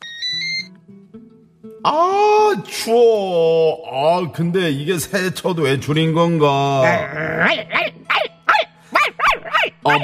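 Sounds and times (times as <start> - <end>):
speech: 0.3 - 1.0, 1.8 - 8.0, 9.8 - 10.0
dog barking in sharp yaps: 8.1 - 10.0.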